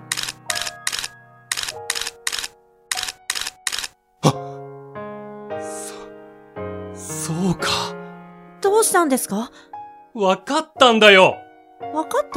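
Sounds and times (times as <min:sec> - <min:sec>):
camera shutter clicks photographing cherry blossoms: 0:00.1 - 0:04.0
speech: 0:07.3 - 0:08.0, 0:08.8 - 0:11.4, 0:12.0 - 0:12.3.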